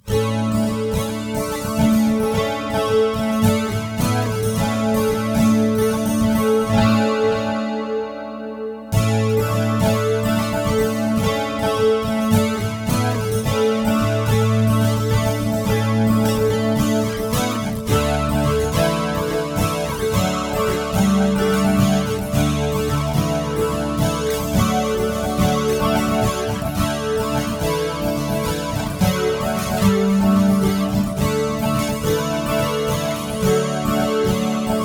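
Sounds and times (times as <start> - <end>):
stereo guitar with chorus and delay effects: 0.0 - 34.8.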